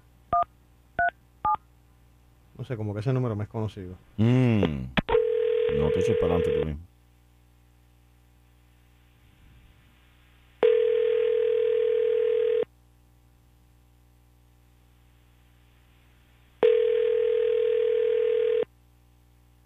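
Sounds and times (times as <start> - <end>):
speech: 2.6 - 5.0, 5.7 - 6.9
phone line ringing tone: 5.1 - 6.8, 10.6 - 12.7, 16.6 - 18.7.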